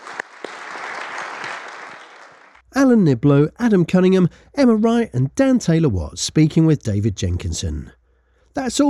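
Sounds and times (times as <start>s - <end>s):
audience applause for a panel: 0.0s - 2.6s
sharp individual claps: 0.0s - 2.6s
speech: 2.8s - 8.0s, 8.6s - 8.8s.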